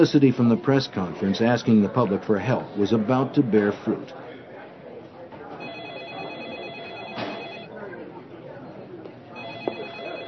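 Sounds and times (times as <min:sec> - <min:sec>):
speech: 0:00.0 - 0:04.3
people chattering in a busy room: 0:00.0 - 0:10.2
telephone ringing at a task force headquarters: 0:05.6 - 0:07.7, 0:09.3 - 0:10.2.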